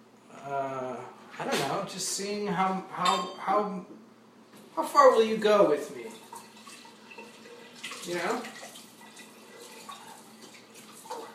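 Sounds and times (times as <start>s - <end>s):
speech: 1.9s - 4.0s, 4.8s - 6.1s, 8.0s - 8.5s
water poured into a measuring cup for cooking rice: 6.0s - 11.3s.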